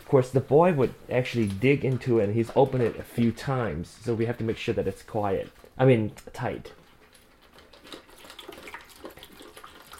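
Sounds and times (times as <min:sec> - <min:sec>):
speech: 0:00.1 - 0:06.8
water pouring into a pet drinking fountain: 0:07.8 - 0:09.9.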